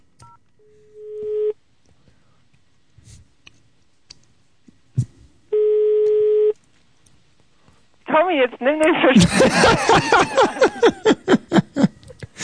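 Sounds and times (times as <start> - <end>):
buzzing telephone ringing tones: 0.2 - 1.6, 5.6 - 6.6
speech: 8.3 - 10.6
laughter: 9.2 - 12.4.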